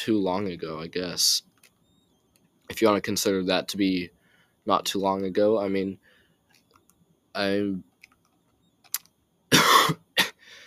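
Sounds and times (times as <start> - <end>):
speech: 0.0 - 1.5, 2.7 - 6.1, 7.4 - 7.9
soft trailing breath: 4.1 - 4.6, 6.0 - 6.5, 10.4 - 10.6
person with a cold coughing: 9.5 - 10.5.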